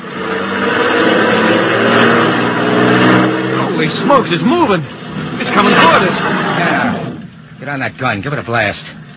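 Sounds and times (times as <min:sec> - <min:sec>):
car engine revving as the car pulls away on the road shoulder: 0:00.0 - 0:07.4
speech: 0:04.1 - 0:05.0, 0:05.6 - 0:06.3, 0:07.7 - 0:08.9.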